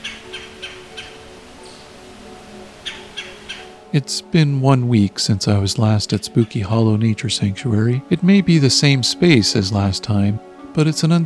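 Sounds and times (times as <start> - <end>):
red-bellied woodpecker stuttered guttural call: 0.0 - 3.9
speech: 3.9 - 11.2.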